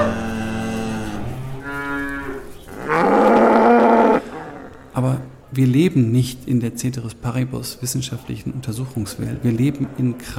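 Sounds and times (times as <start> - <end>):
cows mooing on farm fields: 0.0 - 5.0
speech: 5.0 - 10.3.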